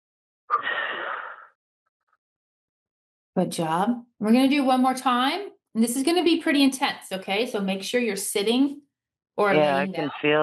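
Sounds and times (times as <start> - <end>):
deep breath: 0.5 - 1.6
speech: 3.4 - 10.4.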